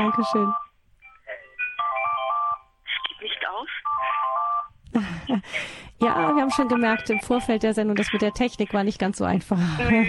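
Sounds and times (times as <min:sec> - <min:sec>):
speech: 0:00.0 - 0:00.6, 0:05.0 - 0:10.0
telephone electronic melodic ringtone: 0:00.0 - 0:02.7, 0:03.8 - 0:04.7, 0:06.0 - 0:08.8.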